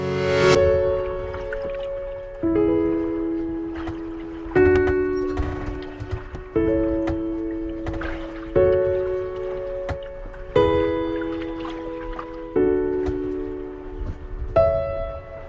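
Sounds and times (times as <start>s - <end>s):
heavy hollow thumps against a sailboat hull near the rudder: 1.1s - 15.4s.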